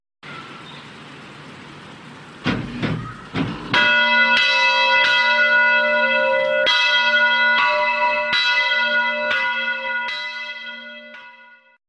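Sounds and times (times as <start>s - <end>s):
church bell ringing: 3.6s - 11.8s.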